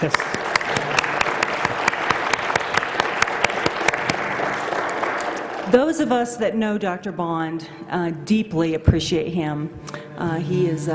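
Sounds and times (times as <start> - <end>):
speech: 0.0 - 0.4, 5.7 - 10.9
medium-sized audience applauding: 0.0 - 5.8.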